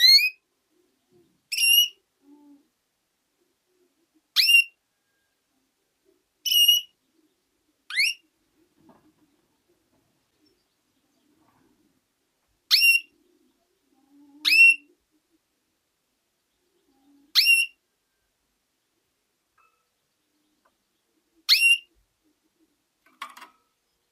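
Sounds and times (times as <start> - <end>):
female canary upward-sweeping whistled calls: 0.0 - 0.4, 1.5 - 2.0, 4.4 - 4.8, 6.4 - 7.0, 7.9 - 8.2, 12.7 - 13.1, 14.4 - 14.9, 17.3 - 17.8, 21.5 - 21.9.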